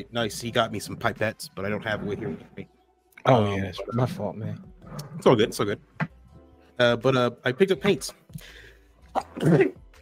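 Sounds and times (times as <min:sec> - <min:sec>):
speech: 0:00.0 - 0:06.0, 0:06.8 - 0:08.6, 0:09.2 - 0:09.8
loud sneeze from an allergy to paints: 0:09.2 - 0:09.8.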